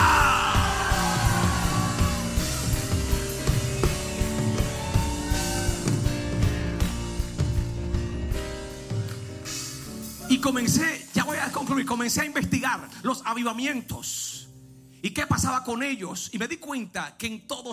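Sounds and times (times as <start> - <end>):
large crowd roaring a war cry: 0.0 - 2.5
music with pounding drums: 0.0 - 11.6
speech: 10.4 - 14.3, 15.0 - 17.7.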